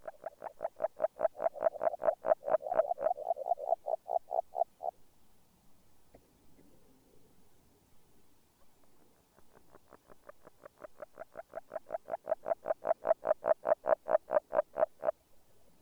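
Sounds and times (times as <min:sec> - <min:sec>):
Agile frog giving knocking croaks: 0:00.0 - 0:05.0, 0:09.5 - 0:15.2.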